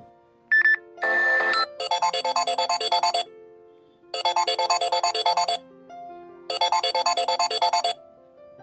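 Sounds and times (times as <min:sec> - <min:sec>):
fast warbling electronic mobile phone ringtone melody: 0:00.5 - 0:03.3, 0:04.2 - 0:05.6, 0:06.5 - 0:08.0
shorter beeps and chirpy tones from other mobile phones: 0:00.5 - 0:03.3, 0:04.2 - 0:05.6, 0:06.5 - 0:08.0.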